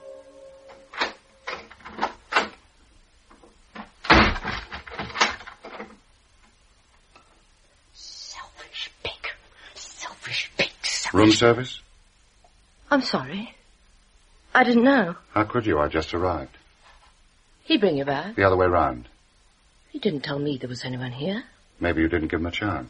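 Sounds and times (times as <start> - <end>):
clattering: 3.3 - 6.0
heavy door slamming with a booming bang: 3.9 - 5.6
speech: 11.2 - 11.9, 12.9 - 13.6, 14.6 - 16.6, 17.7 - 19.1, 19.9 - 22.8.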